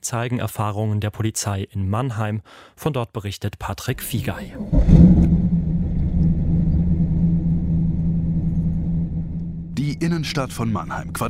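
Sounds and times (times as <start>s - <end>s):
speech: 0.1s - 5.2s, 10.0s - 11.2s
loud car driving past on a city centre street in Mannheim Germany: 4.6s - 11.2s.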